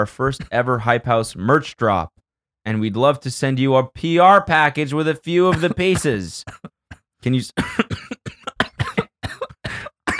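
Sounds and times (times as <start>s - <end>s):
speech: 0.0s - 8.1s
forced exaggerated fake coughs from one person: 5.5s - 10.1s.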